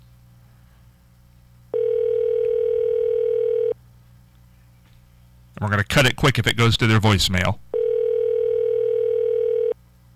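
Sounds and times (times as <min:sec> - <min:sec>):
phone line ring tone through the earpiece on an unanswered call: 0:01.7 - 0:03.8, 0:07.7 - 0:09.8
speech: 0:05.6 - 0:07.6.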